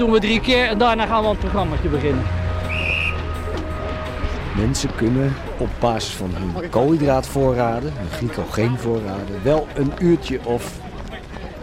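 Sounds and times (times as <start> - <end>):
speech: 0.0 - 2.4, 4.6 - 10.8
short shrill coach's whistle blast: 2.6 - 3.4.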